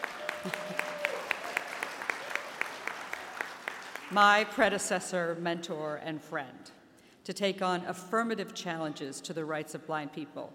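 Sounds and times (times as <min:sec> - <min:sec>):
modest audience applause: 0:00.0 - 0:04.2
speech: 0:00.4 - 0:00.8, 0:04.1 - 0:10.5.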